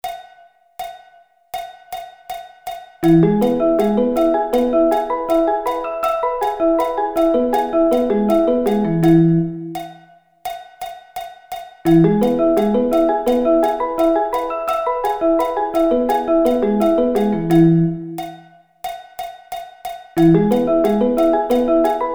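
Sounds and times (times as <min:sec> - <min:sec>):
E arpeggio inversions: 0:03.0 - 0:09.8, 0:11.9 - 0:18.2, 0:20.2 - 0:22.1.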